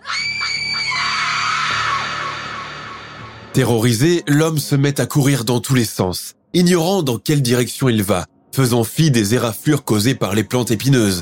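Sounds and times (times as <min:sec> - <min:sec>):
woman screaming: 0:00.0 - 0:03.3
speech: 0:03.6 - 0:11.1.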